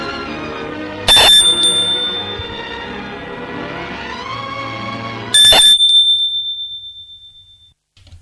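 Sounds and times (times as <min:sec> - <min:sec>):
doorbell ringing: 0:01.1 - 0:03.0, 0:05.4 - 0:07.7.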